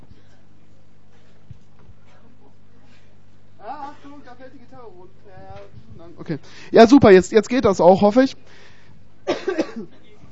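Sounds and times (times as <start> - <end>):
speech: 4.3 - 8.6
dry coughs: 9.2 - 10.2.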